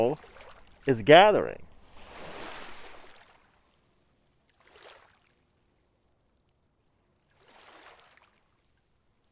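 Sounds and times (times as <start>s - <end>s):
speech: 0.0s - 1.6s
gentle saltwater waves lapping against the shore: 0.0s - 9.3s.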